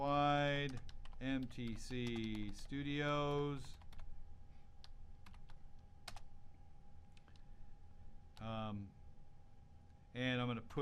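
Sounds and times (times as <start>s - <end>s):
speech: 0.0s - 3.8s, 8.4s - 9.0s, 10.1s - 10.7s
typing on a computer keyboard: 0.0s - 4.1s, 4.8s - 6.3s.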